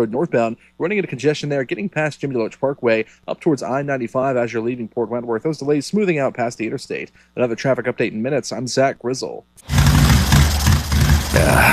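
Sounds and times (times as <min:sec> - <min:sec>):
speech: 0:00.0 - 0:10.1
motorcycle engine sputtering: 0:09.6 - 0:11.7.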